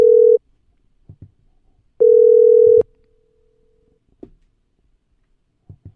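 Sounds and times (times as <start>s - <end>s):
outgoing phone call electronic ringback tone: 0.0s - 0.4s, 2.0s - 2.8s.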